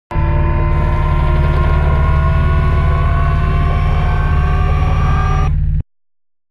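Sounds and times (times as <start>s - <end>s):
servo lifting giant floor panel assembly: 0.7s - 5.6s.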